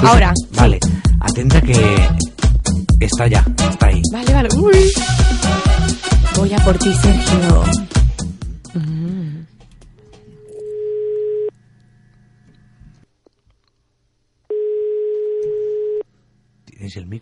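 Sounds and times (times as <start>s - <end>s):
speech: 0.0s - 2.4s, 3.0s - 8.0s, 16.9s - 17.1s
electronic ringback tone from a call to a mobile phone: 10.4s - 11.5s, 14.5s - 16.0s.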